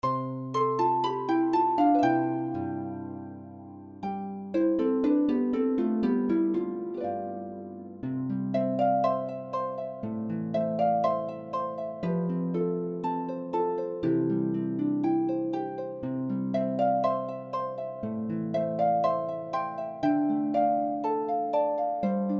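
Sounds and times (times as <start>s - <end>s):
concert harp lullaby: 0.0s - 22.3s.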